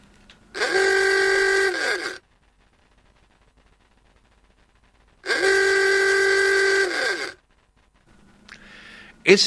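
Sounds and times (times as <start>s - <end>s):
Ford T vintage car rubber bulb horn honking: 0.5s - 2.2s, 5.2s - 7.4s.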